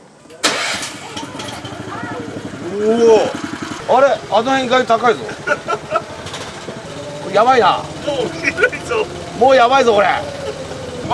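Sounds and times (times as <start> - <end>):
engine of a lever-driven vehicle starting and idling: 0.2 - 11.1
speech: 2.8 - 5.8, 7.3 - 10.4
laughter: 4.5 - 11.1.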